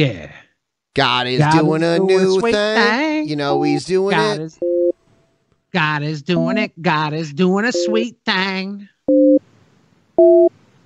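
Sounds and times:
speech: 0.0s - 0.3s, 1.0s - 4.8s, 5.7s - 9.4s, 10.2s - 10.5s
telephone line dual-pitch beeps while a call is being dialed: 3.5s - 4.9s, 6.4s - 6.6s, 7.7s - 8.1s, 9.1s - 9.4s, 10.2s - 10.5s.

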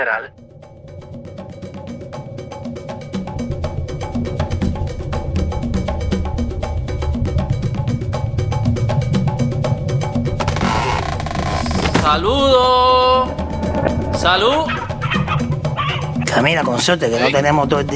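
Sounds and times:
speech: 0.0s - 0.5s, 12.1s - 13.3s, 14.2s - 14.8s, 16.4s - 17.9s
Cuban music with cowbell beat and bass groove: 1.0s - 17.9s
bright regular cowbell beat: 12.3s - 17.9s
rooster making throaty burbling clucks: 14.7s - 16.2s.

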